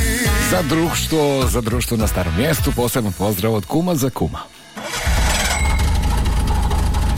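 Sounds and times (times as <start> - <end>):
speech: 0.5 - 4.6
car engine starting: 4.7 - 7.1.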